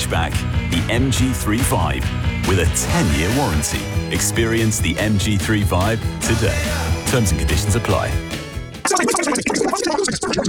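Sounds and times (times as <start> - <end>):
speech: 0.1 - 10.4
advertisement played back at extreme speed as garbled chatter: 2.4 - 10.4.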